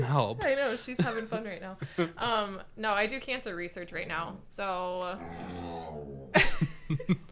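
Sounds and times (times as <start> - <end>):
speech: 0.0 - 7.3
dog growling: 5.1 - 6.4.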